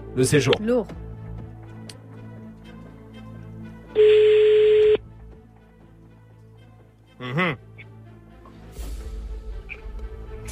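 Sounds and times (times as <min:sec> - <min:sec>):
speech: 0:00.2 - 0:01.0, 0:07.2 - 0:07.6
ringing tone of an outgoing telephone call: 0:04.0 - 0:05.0.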